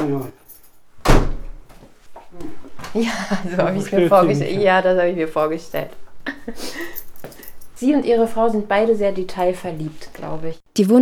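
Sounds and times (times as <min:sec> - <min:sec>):
speech: 0:00.0 - 0:00.4, 0:02.3 - 0:07.0, 0:07.8 - 0:10.9
quiet shuffling and faint movement: 0:00.0 - 0:10.6
door swinging shut with a loud thud: 0:01.0 - 0:01.8
laughter: 0:02.5 - 0:07.0.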